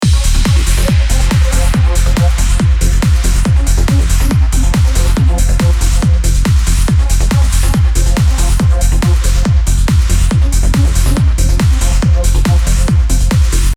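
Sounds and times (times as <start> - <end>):
classic trance kick bass: 0.0 - 13.7.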